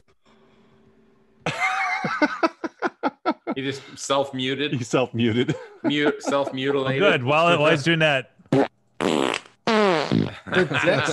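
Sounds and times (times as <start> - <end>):
laughter: 1.4 - 7.9, 10.3 - 11.1
speech: 2.1 - 2.6, 3.6 - 8.7, 10.5 - 11.1
farting: 8.5 - 10.5.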